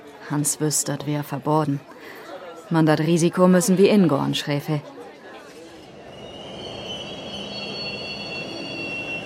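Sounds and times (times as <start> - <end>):
speech: 0.3 - 5.0
train wheels squealing at a railway station: 5.8 - 9.2.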